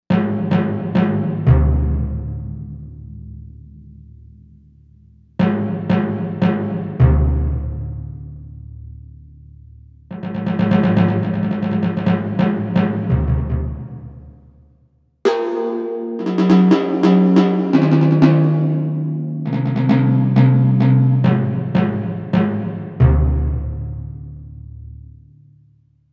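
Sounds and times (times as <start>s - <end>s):
timpani from a synthesizer: 0.1s - 3.5s, 5.4s - 8.7s, 10.1s - 14.6s, 15.3s - 24.6s.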